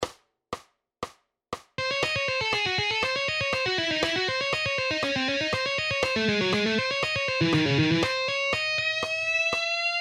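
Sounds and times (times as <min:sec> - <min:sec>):
guitar lick in C sharp harmonic minor: 0:01.8 - 0:09.4.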